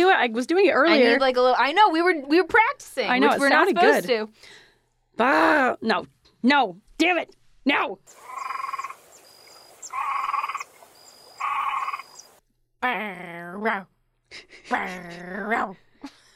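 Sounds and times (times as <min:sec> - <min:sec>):
speech: 0:00.2 - 0:04.6, 0:05.2 - 0:08.5, 0:12.8 - 0:16.2
raspy croaking bursts: 0:08.1 - 0:12.4.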